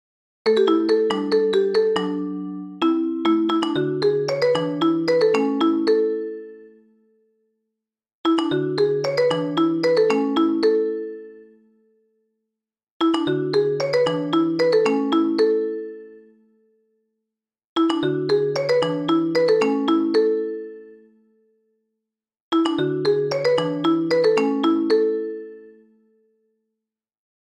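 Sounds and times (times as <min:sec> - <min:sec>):
iPhone and Nokia ringtone: 0:00.5 - 0:06.9, 0:08.3 - 0:11.6, 0:13.0 - 0:16.4, 0:17.8 - 0:21.1, 0:22.5 - 0:25.9.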